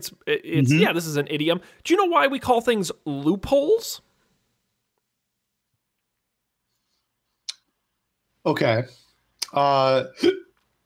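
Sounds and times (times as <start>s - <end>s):
speech: 0.0s - 4.1s, 8.4s - 10.5s
short voiced vocal sound: 0.5s - 0.9s
person hiccuping: 10.1s - 10.6s.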